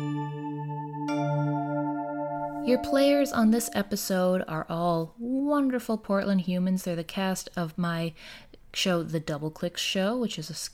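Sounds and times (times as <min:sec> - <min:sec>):
bright bell-like chime ringing: 0:00.0 - 0:04.1
speech: 0:02.6 - 0:10.7.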